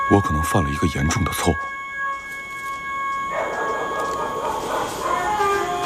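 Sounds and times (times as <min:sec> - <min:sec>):
speech: 0:00.1 - 0:01.8
dog barking at night near a village: 0:03.3 - 0:05.7.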